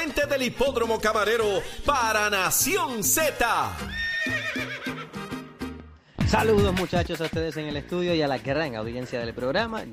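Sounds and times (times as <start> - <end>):
speech: 0.0 - 4.4, 6.3 - 9.9
horse neighing: 3.8 - 5.6.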